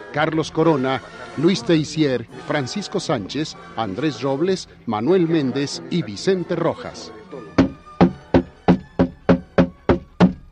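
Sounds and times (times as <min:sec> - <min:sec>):
speech: 0:00.1 - 0:07.2
heavy pounding on a door: 0:07.6 - 0:10.4.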